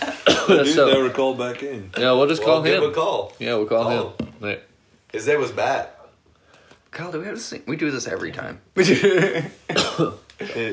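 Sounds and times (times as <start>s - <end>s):
person coughing: 0.0s - 0.7s, 9.2s - 10.7s
speech: 0.5s - 6.0s, 6.9s - 10.7s.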